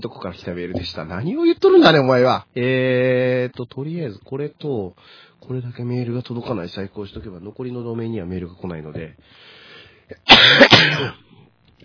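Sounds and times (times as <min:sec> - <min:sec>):
speech: 0:00.0 - 0:11.2
harsh throaty coughing: 0:10.1 - 0:11.3.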